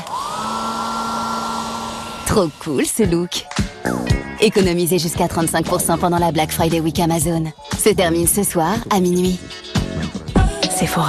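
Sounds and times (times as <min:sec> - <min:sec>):
hair dryer motor whirring and blowing: 0:00.0 - 0:03.4
speech: 0:02.3 - 0:09.6, 0:10.8 - 0:11.0.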